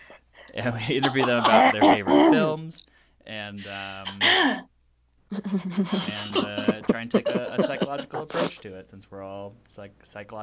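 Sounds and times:
laughter: 0.6 - 2.6, 5.5 - 8.6
speech: 0.6 - 4.7, 5.3 - 10.4
person clearing throat: 1.0 - 2.6, 6.4 - 8.6.

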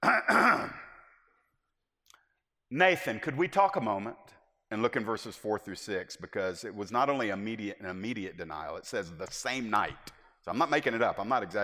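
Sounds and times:
person clearing throat: 0.0 - 1.1
speech: 2.7 - 11.6.

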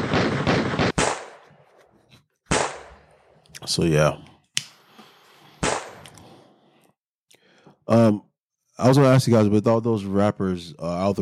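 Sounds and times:
gunshot sound effects: 0.0 - 1.6, 2.5 - 3.1, 5.6 - 6.0
speech: 3.6 - 4.3, 7.9 - 11.2.

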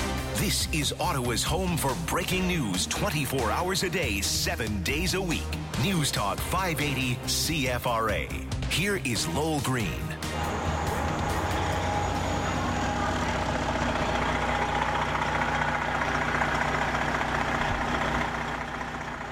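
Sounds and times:
several large diesel bus engines idling: 0.0 - 7.8, 9.6 - 19.3
speech: 0.4 - 10.6
faint high whine: 10.3 - 15.2.

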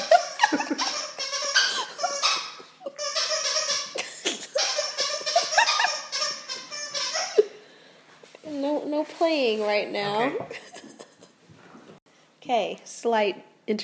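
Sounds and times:
dog playing with a squeaky toy: 0.0 - 7.6
speech: 9.3 - 10.6, 12.5 - 13.8.

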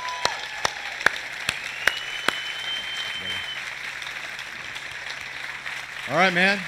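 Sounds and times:
sparse applause from a church audience: 0.0 - 6.6
speech: 6.1 - 6.6.

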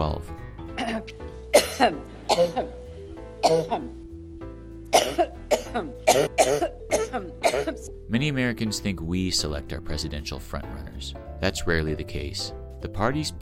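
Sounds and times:
speech: 0.0 - 0.4, 1.8 - 2.8, 3.4 - 4.0, 5.1 - 13.3
woman clearing her throat: 0.8 - 2.7, 3.4 - 3.9, 4.9 - 7.9
woman's coughing fit with harsh rough coughs: 0.8 - 2.7, 3.4 - 4.0, 4.9 - 7.9.

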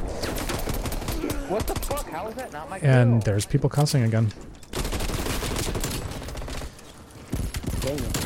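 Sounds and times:
rapid gunfire in a modern-warfare-style first-person shooter video game: 0.2 - 2.1, 4.7 - 8.2
speech: 1.5 - 4.6.

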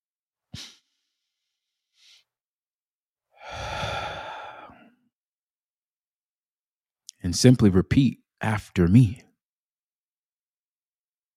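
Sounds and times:
deep breath in and out with sighing exhale: 0.6 - 2.4, 3.3 - 5.1
speech: 7.2 - 9.3.

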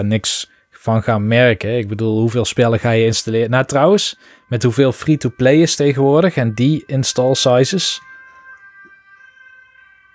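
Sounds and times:
speech: 0.0 - 8.1
ambulance siren wailing: 2.6 - 10.1.

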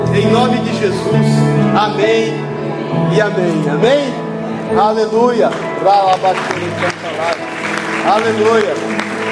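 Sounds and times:
speech: 0.2 - 9.1
audience clapping at a Christian worship service: 5.4 - 9.3.

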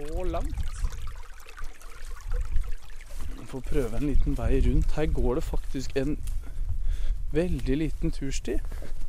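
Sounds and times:
water trickling in a small stream: 0.0 - 6.0
speech: 0.2 - 0.8, 3.5 - 6.3, 7.3 - 9.0.

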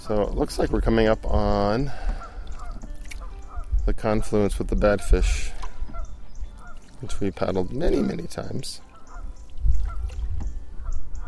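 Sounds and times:
speech: 0.0 - 2.1, 3.9 - 5.6, 7.0 - 8.9
geese honking: 1.9 - 10.1, 10.7 - 11.2.

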